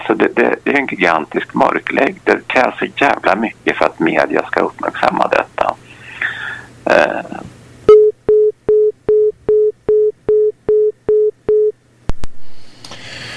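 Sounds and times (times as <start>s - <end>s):
speech: 0.1s - 5.5s
telephone busy tone after a phone call disconnects: 7.9s - 11.7s.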